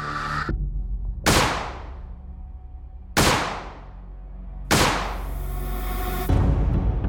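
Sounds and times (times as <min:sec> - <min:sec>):
low rumbling background: 0:00.0 - 0:07.0
pistol shots: 0:01.3 - 0:01.9, 0:03.2 - 0:03.8, 0:04.7 - 0:05.3.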